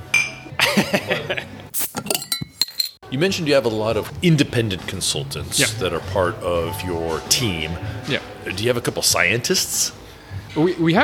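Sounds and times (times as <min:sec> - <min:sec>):
glasses clinking together in a toast: 0:00.0 - 0:00.5, 0:02.0 - 0:03.0
laughter: 0:00.6 - 0:01.7
speech: 0:00.8 - 0:01.4, 0:03.1 - 0:11.0.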